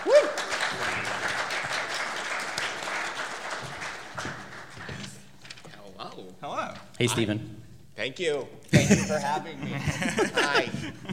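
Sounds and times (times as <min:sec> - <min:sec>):
person whooping: 0:00.0 - 0:00.5
audience applause with many hands clapping: 0:00.0 - 0:05.3
speech: 0:07.0 - 0:11.1
laughter: 0:08.7 - 0:11.1.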